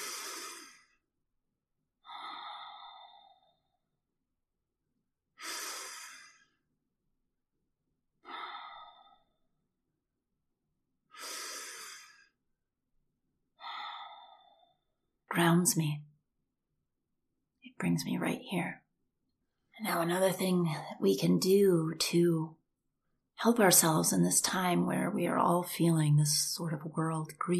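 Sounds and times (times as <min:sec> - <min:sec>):
very deep breaths: 0:00.0 - 0:01.0, 0:02.0 - 0:03.8, 0:05.3 - 0:06.7, 0:08.2 - 0:09.4, 0:11.1 - 0:12.4, 0:13.6 - 0:14.9
speech: 0:15.4 - 0:16.1, 0:17.8 - 0:18.8, 0:19.8 - 0:22.6, 0:23.4 - 0:27.5.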